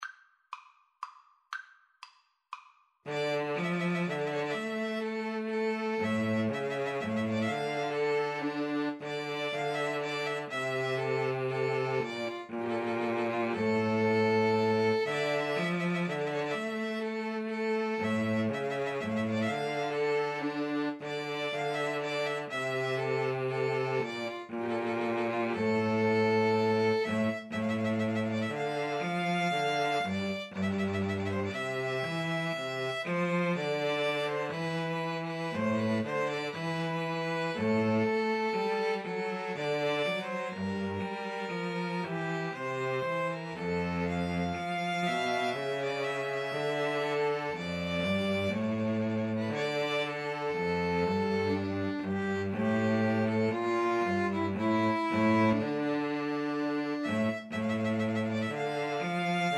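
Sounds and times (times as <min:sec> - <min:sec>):
cello playing a pastorale: 0:03.1 - 0:59.5
two violins playing a pastorale: 0:03.1 - 0:59.5.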